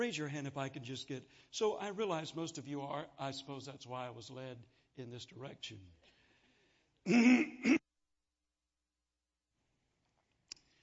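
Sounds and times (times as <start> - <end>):
speech: 0.0 - 6.1, 7.0 - 7.8
man clearing his throat: 7.1 - 7.8.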